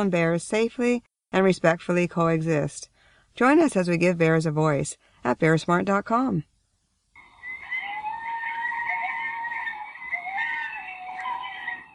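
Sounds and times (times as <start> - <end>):
speech: 0.0 - 6.5
coyotes howling in chorus: 7.2 - 11.9.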